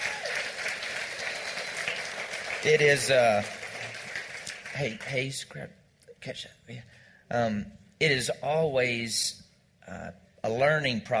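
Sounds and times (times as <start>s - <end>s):
crowd applauding: 0.0s - 5.4s
speech: 2.6s - 3.6s, 4.8s - 11.1s.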